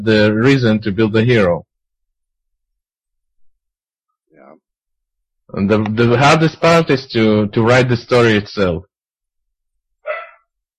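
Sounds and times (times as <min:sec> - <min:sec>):
speech: 0:00.0 - 0:01.7, 0:05.5 - 0:08.9
dog barking: 0:10.0 - 0:10.5.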